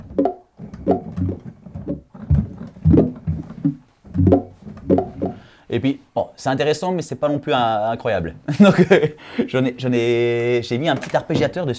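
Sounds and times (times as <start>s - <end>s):
thudding falling apple sample played as notes on a master keyboard: 0.0s - 5.4s
speech: 0.9s - 1.5s, 5.8s - 11.7s
laughter: 8.5s - 9.2s.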